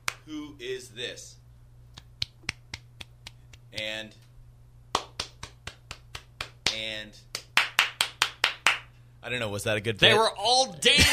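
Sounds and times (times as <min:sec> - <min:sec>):
sharp hand claps: 0:00.0 - 0:00.2, 0:01.9 - 0:03.9, 0:04.9 - 0:08.9
low steady hum: 0:00.0 - 0:11.1
speech: 0:00.3 - 0:01.4, 0:03.7 - 0:04.2, 0:06.7 - 0:07.3, 0:09.2 - 0:11.1.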